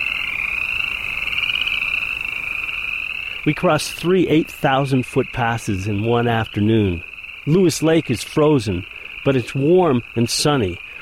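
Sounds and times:
chorus of frogs croaking and trilling in spring pools: 0:00.0 - 0:11.0
speech: 0:03.4 - 0:10.8.

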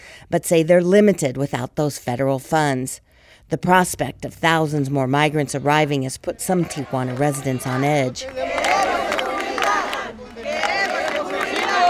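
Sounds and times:
speech: 0:00.3 - 0:08.7
large crowd of protesters chanting in unison: 0:05.4 - 0:11.8.

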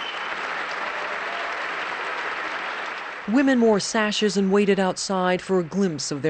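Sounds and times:
large crowd applauding: 0:00.0 - 0:03.6
speech: 0:03.3 - 0:06.2.

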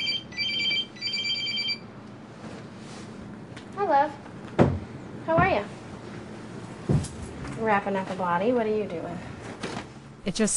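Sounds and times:
cell phone ringing with a bright electronic trill: 0:00.0 - 0:01.9
speech: 0:03.9 - 0:04.3, 0:05.3 - 0:05.8, 0:07.6 - 0:09.3, 0:10.3 - 0:10.5.

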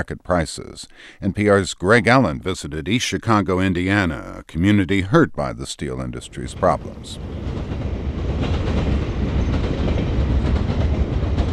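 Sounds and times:
speech: 0:00.0 - 0:07.6
freight train cars rolling on railroad tracks in East Chicago, Indiana: 0:06.2 - 0:11.5
freight train wheels clattering: 0:07.0 - 0:11.5.

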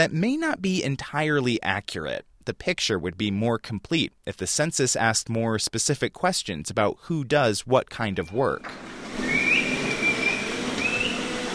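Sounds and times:
speech: 0:00.0 - 0:09.4
people whistling to coax cows: 0:09.2 - 0:11.3.

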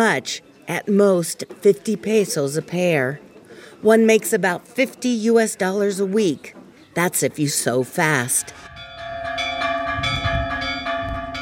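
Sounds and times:
speech: 0:00.0 - 0:08.7
church bells ringing for evening mass in a small town: 0:08.2 - 0:11.3.

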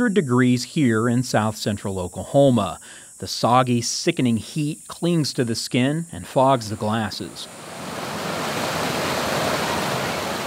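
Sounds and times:
speech: 0:00.0 - 0:07.7
waterfall rushing into a pool in south central Oklahoma: 0:06.9 - 0:10.4.

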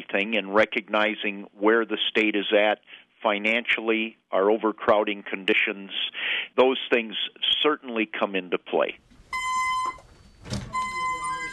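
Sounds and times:
speech: 0:00.1 - 0:09.2
security buzzer at a prison reentry center entrance vestibule: 0:09.3 - 0:10.1, 0:10.7 - 0:11.5.

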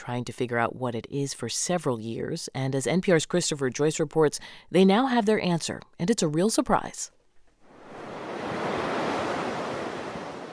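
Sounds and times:
speech: 0:00.0 - 0:07.2
ocean waves rolling onto a beach: 0:07.6 - 0:10.5.

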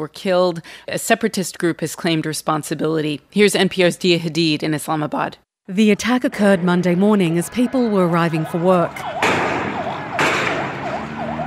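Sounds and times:
speech: 0:00.0 - 0:09.2
wailing ambulance sirens after an armed attack on a stock exchange building: 0:06.1 - 0:11.4.

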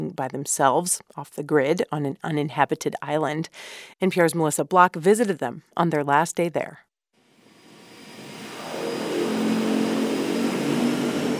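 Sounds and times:
speech: 0:00.0 - 0:06.9
seaplane engine droning on a trip to Loggerhead Key: 0:07.3 - 0:11.3.

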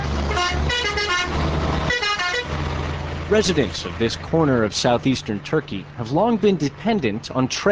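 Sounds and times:
fuel tanker truck horn blasts at a border crossing: 0:00.0 - 0:02.6
heavy fuel tanker truck engines idling at a border crossing: 0:00.0 - 0:07.7
speech: 0:03.3 - 0:07.7.

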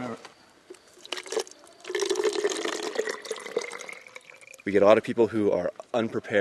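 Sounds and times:
water pouring into a hiker's bottle on the Bright Angel Trail: 0:00.9 - 0:04.7
speech: 0:04.7 - 0:06.3.

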